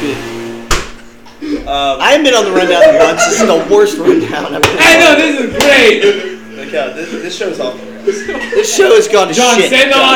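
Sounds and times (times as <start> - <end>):
steady low electrical hum: 0.0 - 10.1
door shutting with a sharp thud: 0.6 - 1.2
laughter: 1.4 - 9.9
speech: 1.7 - 10.1.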